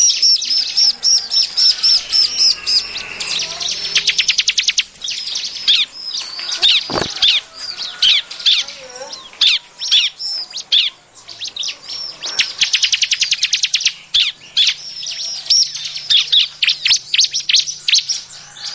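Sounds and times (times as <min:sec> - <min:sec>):
bar-winged prinia calling with chirps and ticking notes: 0:00.0 - 0:18.7.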